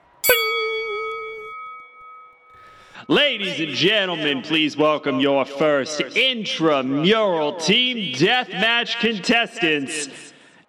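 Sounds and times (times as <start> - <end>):
single bell strike: 0.0 - 4.9
speech: 3.0 - 10.6.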